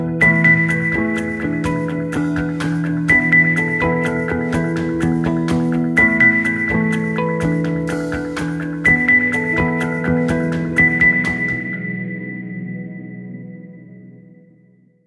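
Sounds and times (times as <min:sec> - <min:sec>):
phone tone: 0:00.2 - 0:11.9.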